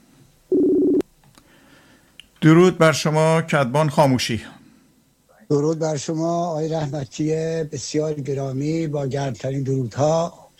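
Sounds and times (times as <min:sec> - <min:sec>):
telephone call ringing tone: 0:00.5 - 0:01.0
speech: 0:02.4 - 0:04.6, 0:05.5 - 0:10.5.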